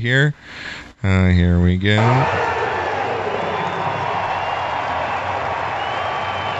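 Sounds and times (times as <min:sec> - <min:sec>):
speech: 0:00.0 - 0:02.4
baseball stadium crowd roaring and cheering: 0:02.0 - 0:06.5
scattered clapping: 0:02.2 - 0:06.5.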